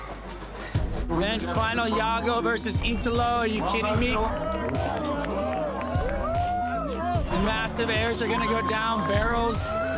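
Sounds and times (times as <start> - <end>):
speech: 1.1 - 5.4, 7.4 - 9.9
large crowd cheering and roaring at surf contest: 3.1 - 9.9
crowd whoops at surf contest: 4.5 - 7.3, 8.3 - 9.9.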